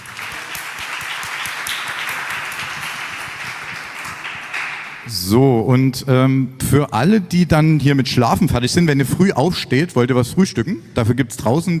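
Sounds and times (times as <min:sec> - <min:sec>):
crowd applauding: 0:00.0 - 0:05.1
speech: 0:05.1 - 0:11.7.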